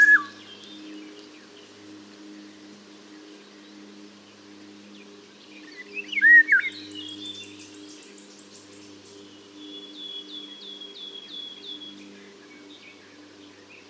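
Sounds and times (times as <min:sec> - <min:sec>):
Eurasian golden oriole Oriolus oriolus song: 0:00.0 - 0:01.2, 0:05.0 - 0:13.8.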